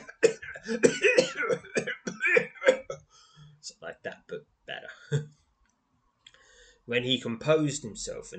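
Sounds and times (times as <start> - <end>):
harsh violent coughing fit: 0.0 - 3.1
speech: 0.7 - 1.6, 6.9 - 8.3.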